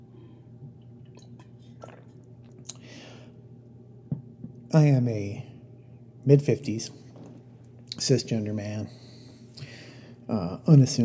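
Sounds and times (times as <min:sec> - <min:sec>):
low steady hum: 0:00.0 - 0:11.0
soft swallowing gulp: 0:01.0 - 0:03.0
wet mouth clicks: 0:01.2 - 0:02.9
speech: 0:04.7 - 0:05.5, 0:06.2 - 0:07.0, 0:08.0 - 0:09.0, 0:10.3 - 0:11.0.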